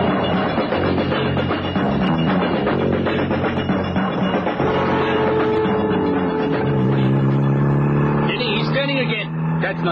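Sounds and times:
car engine revving and accelerating on road: 0.0s - 9.9s
dense rumble of road noise: 0.0s - 9.9s
speech: 9.7s - 9.9s.

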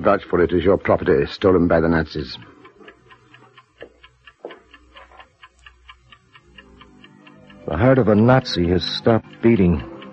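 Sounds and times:
speech: 0.0s - 2.5s, 7.7s - 9.9s
pocket watch ticking: 0.0s - 10.1s.

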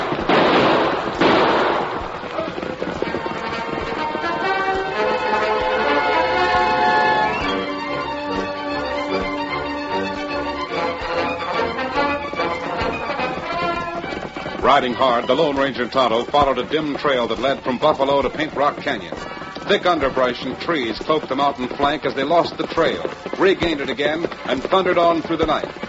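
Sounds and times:
gunshots fired over people's heads: 0.0s - 4.4s
music: 1.6s - 25.8s
speech: 14.7s - 25.8s.

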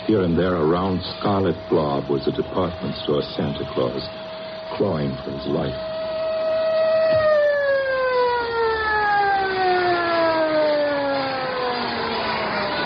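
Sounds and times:
wailing siren: 0.0s - 12.8s
speech: 0.1s - 5.9s.

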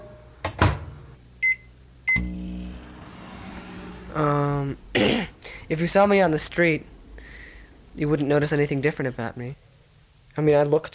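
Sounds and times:
microwave oven running with a low hum: 0.0s - 5.2s
speech: 4.2s - 6.9s, 8.0s - 9.7s, 10.4s - 10.9s.

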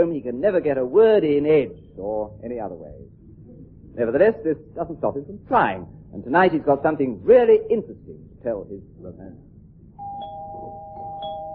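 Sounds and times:
speech: 0.0s - 3.2s, 4.0s - 9.5s
ding-dong electronic doorbell ringing with a steady tone: 10.0s - 11.5s.

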